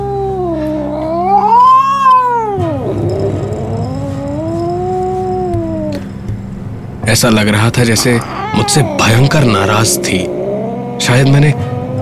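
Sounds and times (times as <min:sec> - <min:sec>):
angry cat on top of a fridge yowling: 0:00.0 - 0:06.1, 0:07.9 - 0:11.3
speech: 0:07.1 - 0:10.4, 0:11.0 - 0:11.5.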